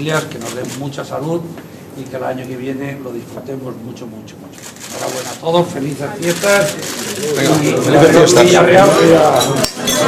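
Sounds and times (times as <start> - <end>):
speech: 0.0 - 10.0
busy hum of overlapping voices and chatter: 4.4 - 10.0
glasses clinking together in a toast: 9.2 - 10.0.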